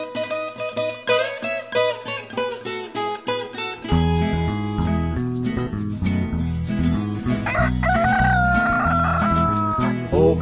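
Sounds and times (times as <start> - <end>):
rural country music with strummed notes: 0.0 - 10.4
rooster crowing: 7.4 - 10.0.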